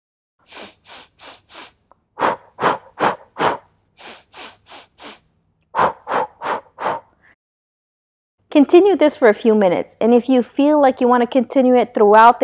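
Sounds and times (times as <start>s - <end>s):
quick sharp sniffs in through the nose: 0.4s - 7.1s
forceful puffs out through the mouth: 0.4s - 7.4s
speech: 8.6s - 12.4s.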